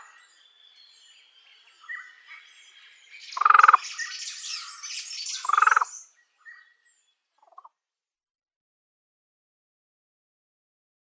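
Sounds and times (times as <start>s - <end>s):
faint bird chirps: 0.0s - 7.8s
fan-tailed raven croaking calls: 5.4s - 5.9s.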